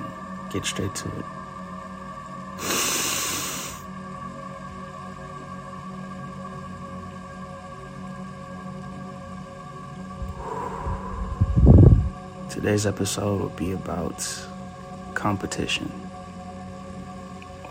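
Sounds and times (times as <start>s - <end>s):
low steady hum: 0.0s - 17.6s
speech: 0.5s - 1.4s, 12.7s - 14.5s, 15.2s - 16.2s
deep breath taken by a host: 2.6s - 3.9s, 10.1s - 12.4s.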